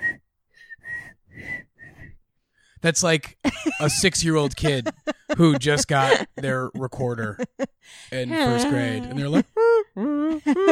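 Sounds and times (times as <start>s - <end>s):
person whistling a wobbly tune: 0.0s - 2.2s
speech: 2.8s - 9.5s, 10.3s - 10.7s
laughter: 3.4s - 10.7s.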